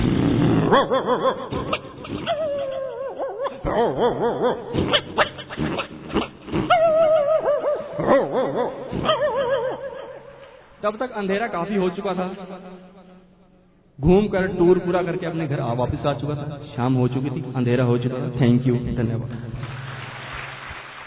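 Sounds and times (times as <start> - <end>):
speech: 0.7 - 1.8, 3.8 - 5.4, 8.1 - 9.3, 10.8 - 12.9, 14.0 - 19.6
pack of small and large street dogs barking at fighting cats: 0.7 - 10.6.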